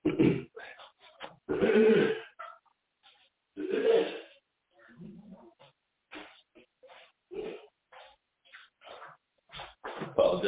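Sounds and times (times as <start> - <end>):
person coughing softly: 0.0 - 0.6, 1.5 - 2.4, 3.6 - 4.4
person clearing throat forcefully: 0.0 - 0.7, 1.5 - 2.5, 3.6 - 4.4, 7.3 - 7.7
speech: 1.8 - 2.0.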